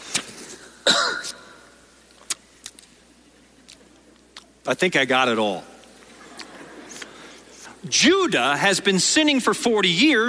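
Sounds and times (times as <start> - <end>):
person coughing: 0.8 - 1.6
speech: 4.7 - 5.7, 7.8 - 10.2.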